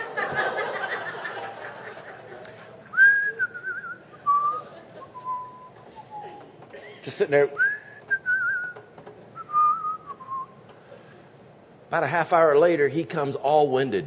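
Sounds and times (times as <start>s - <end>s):
person whistling a wavering tune: 3.0s - 6.5s, 7.6s - 10.6s
person chuckling: 4.3s - 7.1s
speech: 7.0s - 7.7s, 11.9s - 14.0s.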